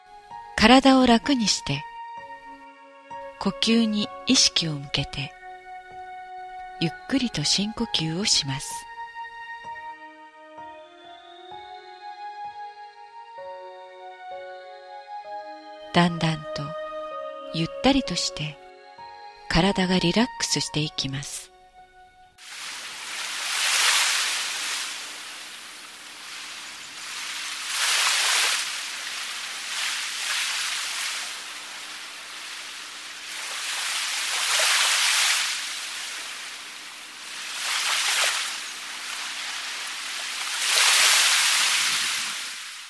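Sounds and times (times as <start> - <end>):
speech: 0.6 - 1.9, 3.4 - 5.4, 6.8 - 8.9, 15.9 - 16.8, 17.5 - 18.6, 19.5 - 21.5
ocean waves breaking and washing onto the shore: 22.4 - 42.8.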